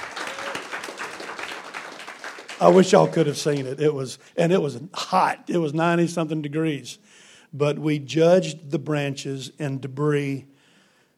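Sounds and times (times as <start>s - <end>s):
audience clapping: 0.0s - 3.8s
speech: 2.6s - 10.5s.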